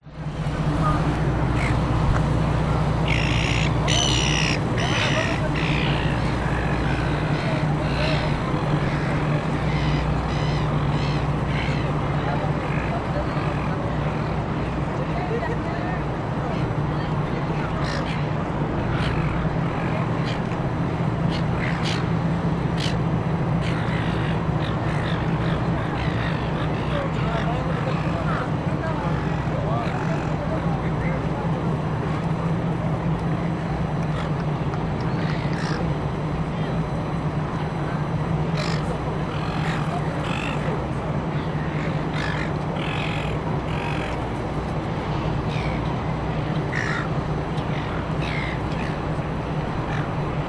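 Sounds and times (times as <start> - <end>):
distant city hum at Darling Harbour in Sydney: 0.0 - 50.4
pedestrians in a public place at Darling Harbour in Sydney: 0.0 - 50.4
seagulls at Darling Harbour in Sydney: 0.7 - 1.9, 2.7 - 14.3, 16.5 - 20.6, 21.2 - 30.6, 35.1 - 36.0, 38.5 - 44.3, 45.4 - 45.9, 46.6 - 49.1, 49.8 - 50.2.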